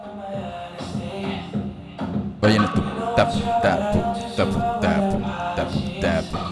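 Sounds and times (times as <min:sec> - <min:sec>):
reggaeton dembow beat through a small loudspeaker: 0:00.0 - 0:06.5
speech: 0:02.4 - 0:06.5.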